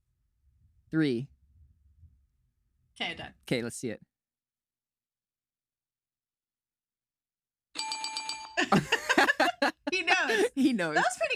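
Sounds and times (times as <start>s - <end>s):
speech: 0.9s - 1.3s, 3.0s - 4.1s, 8.6s - 9.0s, 9.9s - 11.3s
bell ding for a correct answer: 7.8s - 9.0s
people laughing: 8.6s - 10.9s.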